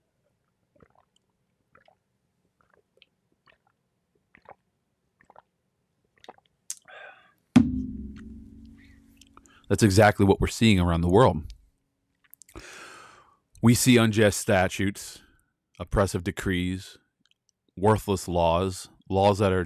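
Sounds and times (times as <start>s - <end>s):
brief slurp of water: 0.7s - 2.0s, 2.6s - 5.5s, 6.1s - 6.9s
person sipping water: 0.7s - 2.0s, 2.6s - 5.5s, 6.1s - 7.1s
soft wet mouth clicks: 0.8s - 2.0s, 2.6s - 5.5s, 6.2s - 6.9s
solid thump with lingering low resonance: 7.6s - 8.9s
speech: 9.7s - 11.5s, 13.6s - 15.2s, 15.8s - 17.0s, 17.8s - 19.6s.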